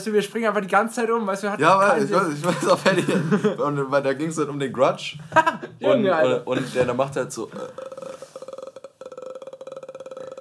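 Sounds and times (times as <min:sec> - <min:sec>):
speech: 0:00.0 - 0:08.2
laughter: 0:02.1 - 0:03.8, 0:05.2 - 0:05.8
voice imitating a continuous croaking burp: 0:07.5 - 0:10.3.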